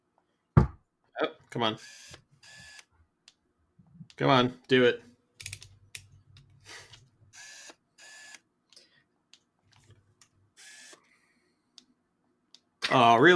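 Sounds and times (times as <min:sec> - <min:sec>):
speech: 0:01.2 - 0:02.2, 0:04.2 - 0:05.1, 0:12.9 - 0:13.3
small camera motor buzzing: 0:01.8 - 0:02.9, 0:07.3 - 0:08.4, 0:10.6 - 0:11.0
small camera shutter clicking: 0:07.4 - 0:08.4, 0:10.6 - 0:11.0.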